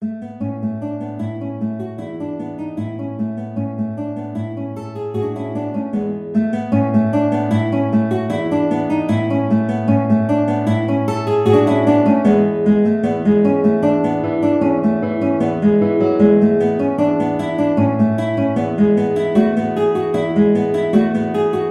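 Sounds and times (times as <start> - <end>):
guitar playing vivace: 0.0 - 21.6.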